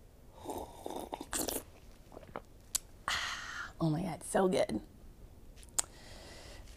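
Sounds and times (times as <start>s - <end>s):
person slurping a sip of coffee: 0.4s - 2.5s
short wet mouth noises: 0.4s - 2.9s
speech: 3.8s - 4.9s.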